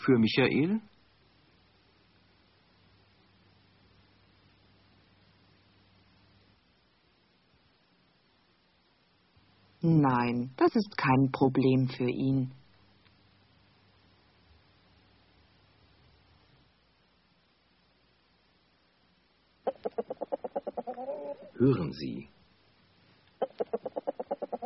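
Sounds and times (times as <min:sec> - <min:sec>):
speech: 0:00.0 - 0:00.9, 0:09.8 - 0:12.6, 0:21.6 - 0:22.4
hen clucking: 0:19.6 - 0:21.6, 0:23.4 - 0:24.6.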